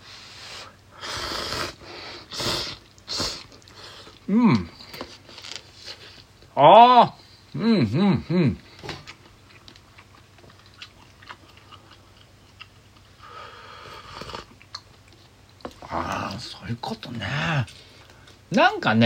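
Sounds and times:
slurping and chewing thin cup ramen noodles: 1.0s - 6.3s, 8.8s - 16.4s
person humming: 4.2s - 4.8s, 6.6s - 8.6s
speech: 4.3s - 4.8s, 6.6s - 8.6s, 18.5s - 19.0s.

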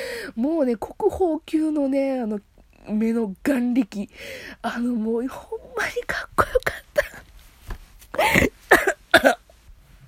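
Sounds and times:
speech: 0.4s - 7.2s, 8.2s - 9.4s
person coughing after choking on something: 8.2s - 9.5s.

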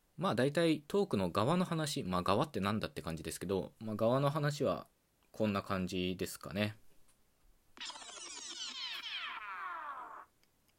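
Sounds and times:
speech: 0.2s - 6.8s, 7.8s - 8.0s
squeaky whirring topic-transition sound effect: 7.8s - 10.3s.

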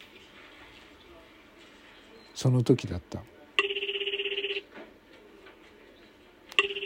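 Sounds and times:
speech: 2.4s - 3.3s
desk telephone bell ringing in a rapid trill: 3.6s - 4.7s, 6.6s - 6.8s.

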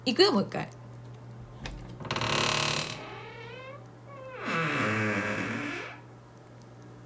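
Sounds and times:
speech: 0.0s - 0.8s
door creaking open and shut: 1.5s - 6.1s.

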